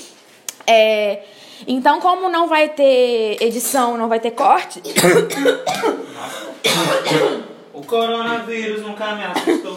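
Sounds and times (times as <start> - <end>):
speech: 0.7 - 9.7
harsh raspy coughing fit while choking: 4.8 - 7.6, 9.4 - 9.7.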